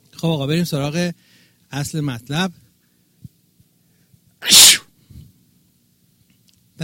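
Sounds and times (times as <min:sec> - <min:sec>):
speech: 0:00.2 - 0:02.6
sneeze: 0:04.4 - 0:04.9.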